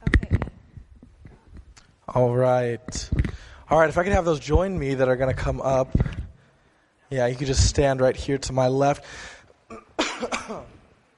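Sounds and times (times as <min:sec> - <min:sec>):
speech: 0:02.1 - 0:06.2, 0:07.1 - 0:09.4
person coughing: 0:09.7 - 0:10.8.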